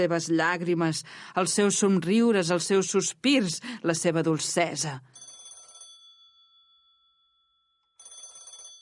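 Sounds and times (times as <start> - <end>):
speech: 0.0 - 5.2
telephone bell ringing: 5.1 - 8.8.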